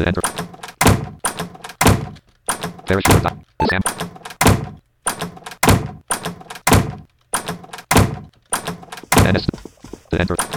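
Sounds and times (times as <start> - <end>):
speech: 0.0 - 0.4, 2.9 - 4.1, 9.3 - 9.6, 10.2 - 10.5
door banging shut with heavy thunks: 0.2 - 9.4.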